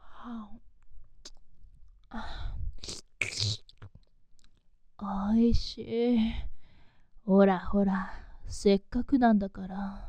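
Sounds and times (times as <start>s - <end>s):
speech: 0.2s - 0.7s, 2.1s - 3.0s, 5.0s - 6.5s, 7.2s - 10.0s
soft mouth sounds of nibbling on an ear: 2.8s - 4.6s.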